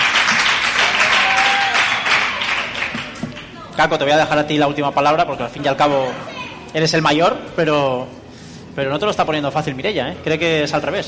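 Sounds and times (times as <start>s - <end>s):
crowd applause: 0.0s - 3.5s
speech: 3.8s - 8.2s, 8.8s - 11.0s.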